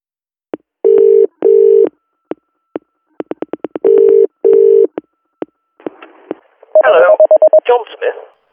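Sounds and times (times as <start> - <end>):
loud electronic telephone dialing tones from an office phone: 0.9 - 1.9, 3.8 - 4.9, 6.8 - 7.6
speech: 7.7 - 8.4.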